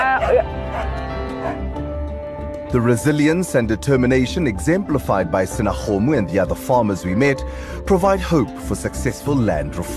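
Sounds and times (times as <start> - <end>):
dog barking on a farm: 0.0 - 1.6
speech: 2.7 - 9.9.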